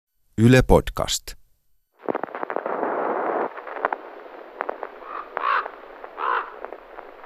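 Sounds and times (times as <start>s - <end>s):
steady hiss: 0.2s - 7.2s
speech: 0.4s - 1.4s
ravens croaking harshly over a lake on a misty day: 2.0s - 7.2s.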